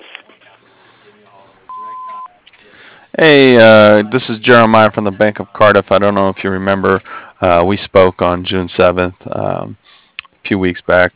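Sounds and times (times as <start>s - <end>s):
voicemail answering machine electronic tone: 1.7s - 2.4s
speech: 3.2s - 9.8s, 10.5s - 11.1s.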